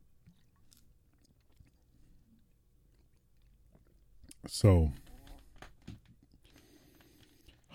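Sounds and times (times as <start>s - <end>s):
person sipping a drink: 0.2s - 4.4s, 6.2s - 7.7s
speech: 4.4s - 5.0s.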